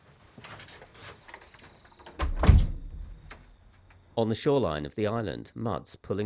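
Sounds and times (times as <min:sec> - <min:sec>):
door pulled shut with a creak and a thud: 0:00.5 - 0:03.6
speech: 0:04.2 - 0:06.2.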